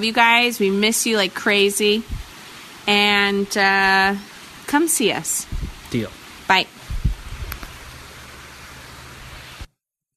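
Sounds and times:
speech: 0:00.0 - 0:02.2, 0:02.9 - 0:06.7
rain falling: 0:00.0 - 0:09.7
soft low thumps: 0:02.0 - 0:02.3, 0:05.4 - 0:06.0, 0:06.8 - 0:07.7.

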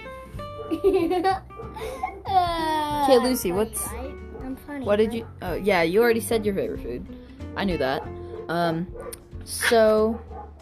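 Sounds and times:
laughter: 0:00.7 - 0:02.2
speech: 0:00.7 - 0:10.3
dogs barking in the backyard: 0:01.6 - 0:01.8, 0:03.4 - 0:05.4, 0:07.9 - 0:09.2, 0:10.1 - 0:10.5.

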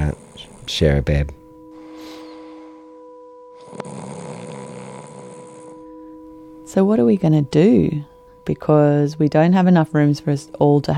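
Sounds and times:
person snoring: 0:00.0 - 0:06.2
faint steady electronic hum: 0:00.0 - 0:10.9
speech: 0:00.1 - 0:01.4, 0:06.8 - 0:10.9.

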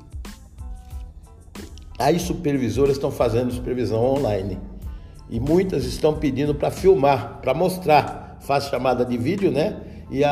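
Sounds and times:
person taking a small sip of water: 0:00.6 - 0:02.0
speech: 0:02.0 - 0:04.7, 0:05.3 - 0:10.2.

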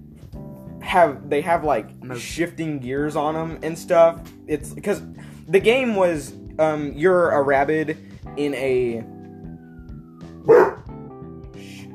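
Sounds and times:
speech: 0:00.9 - 0:09.1
pet dog barking: 0:10.5 - 0:10.8.

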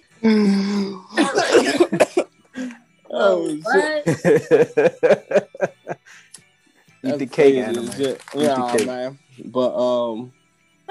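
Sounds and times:
speech: 0:00.2 - 0:00.6, 0:03.2 - 0:05.4, 0:07.0 - 0:10.8
person clearing throat with a raspy throat sound: 0:00.2 - 0:02.3
person coughing with rough harsh hacking coughs: 0:00.3 - 0:02.3
laughter: 0:04.0 - 0:06.2.

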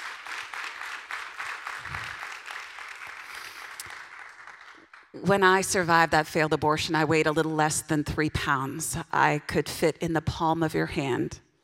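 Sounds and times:
audience applause: 0:00.0 - 0:05.1
speech: 0:05.2 - 0:11.4.

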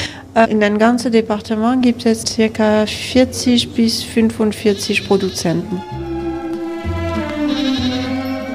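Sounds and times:
speech: 0:00.4 - 0:06.0
goats of a goat-cheese producer bleating: 0:04.6 - 0:08.5.

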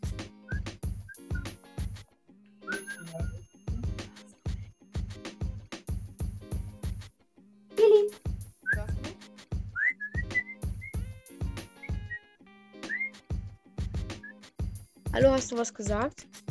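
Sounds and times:
person whistling to call a pet: 0:00.5 - 0:01.6, 0:02.6 - 0:04.0, 0:08.7 - 0:09.0, 0:09.8 - 0:11.1, 0:11.8 - 0:12.2, 0:12.8 - 0:13.2, 0:14.2 - 0:14.4
steady rhythmic low thumping: 0:03.2 - 0:07.0, 0:08.2 - 0:12.2, 0:13.3 - 0:16.4
speech: 0:15.2 - 0:16.4.

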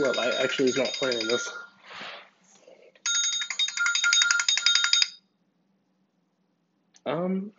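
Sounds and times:
mobile phone ringtone with bright pulsing electronic melody: 0:00.0 - 0:01.8, 0:03.0 - 0:05.2
speech: 0:00.0 - 0:02.1, 0:07.1 - 0:07.5.

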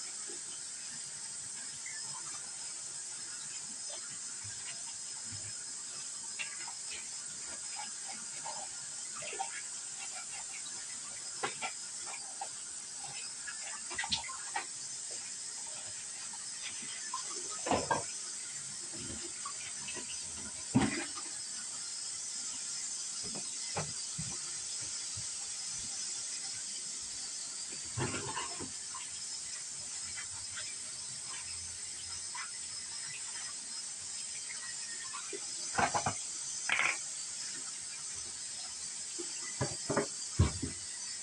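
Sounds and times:
running water hiss: 0:00.0 - 0:41.2
dishes clinking and clattering: 0:17.1 - 0:18.2, 0:35.7 - 0:37.1.

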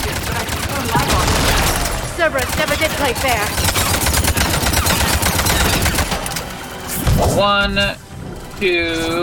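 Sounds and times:
rapid continuous video game gunfire: 0:00.0 - 0:06.4
speech: 0:02.3 - 0:03.7, 0:07.4 - 0:08.0, 0:08.6 - 0:09.2.

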